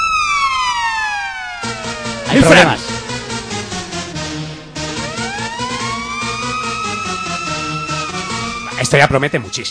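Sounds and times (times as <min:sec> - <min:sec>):
police siren wailing: 0:00.0 - 0:09.6
speech: 0:02.3 - 0:02.9, 0:08.9 - 0:09.6.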